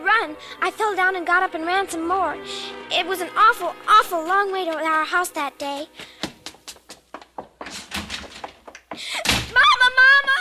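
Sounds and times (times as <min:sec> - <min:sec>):
speech: 0:00.2 - 0:06.2
hollow thuds: 0:06.0 - 0:09.7
door slamming shut: 0:07.6 - 0:08.6, 0:09.2 - 0:09.6.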